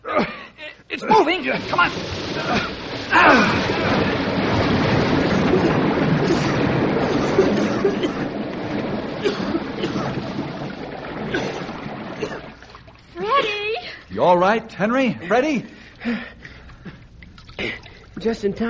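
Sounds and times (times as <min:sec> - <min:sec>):
speech: 0:00.2 - 0:04.0, 0:14.2 - 0:16.4, 0:18.2 - 0:18.6
heavy torrent of water rushing out through an opened door: 0:01.1 - 0:13.6.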